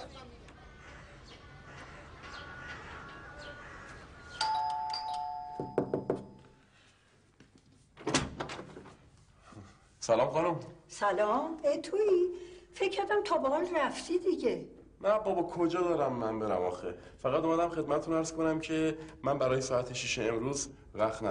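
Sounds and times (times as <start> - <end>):
house doorbell ringing with bright two-tone chime: 4.4 - 6.4
speech: 10.1 - 21.2.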